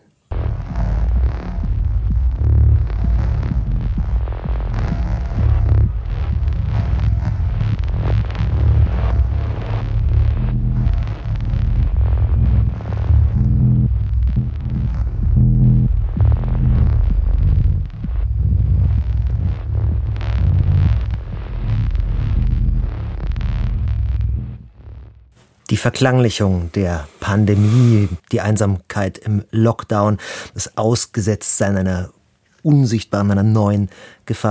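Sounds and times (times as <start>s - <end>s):
throbbing ambient drone music with heavy low hum: 0.3s - 25.4s
speech: 25.8s - 34.5s.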